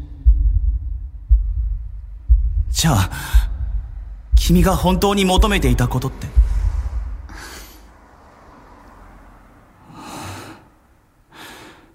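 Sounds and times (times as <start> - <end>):
low heartbeat: 0.0 - 7.5
constant deep whooshing rumble: 0.0 - 8.0
speech: 2.8 - 3.5, 4.5 - 6.4.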